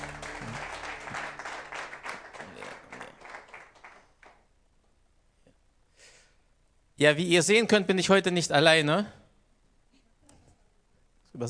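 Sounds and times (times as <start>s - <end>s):
applause for a worship band at a church service: 0.0s - 4.4s
speech: 7.0s - 9.2s.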